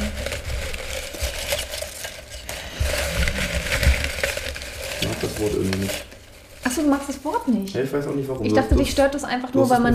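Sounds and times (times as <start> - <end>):
paper slip rustling and crinkling while handled: 0.0 - 7.6
speech: 5.4 - 9.9.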